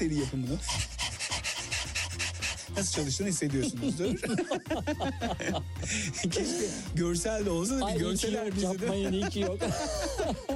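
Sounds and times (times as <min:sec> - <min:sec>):
speech: 0:00.0 - 0:01.2, 0:02.7 - 0:10.5
person imitating a panting dog as a breathing exercise: 0:00.0 - 0:04.0
laughter: 0:02.7 - 0:06.9, 0:08.0 - 0:10.5.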